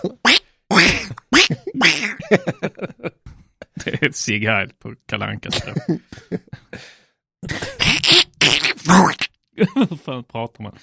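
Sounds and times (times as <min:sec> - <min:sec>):
person imitating duck quacks: 0:00.0 - 0:02.2, 0:07.8 - 0:09.3
speech: 0:00.0 - 0:02.9, 0:03.9 - 0:10.8
laughter: 0:01.5 - 0:04.1, 0:05.5 - 0:06.8.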